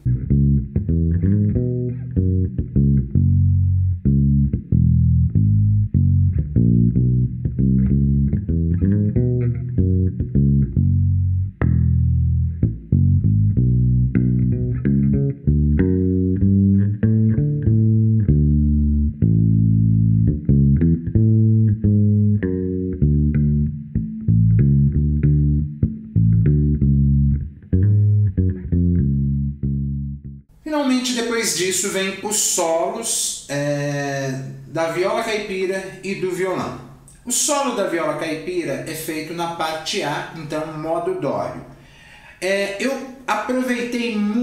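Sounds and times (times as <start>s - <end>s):
double bass playing a solo line in guarânia rhythm: 0.0s - 30.6s
speech: 31.6s - 41.8s, 42.4s - 44.4s.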